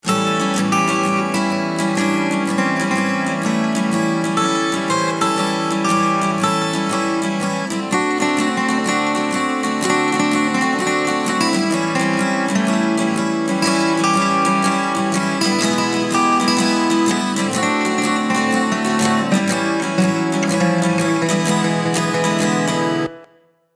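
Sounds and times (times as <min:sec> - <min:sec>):
12 bar blues on acoustic guitar: 0:00.0 - 0:23.4.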